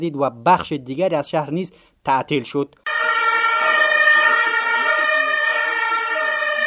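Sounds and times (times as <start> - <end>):
speech: 0.0 - 2.8
ambulance siren wailing in Taloqan during an armed clash: 2.9 - 6.6.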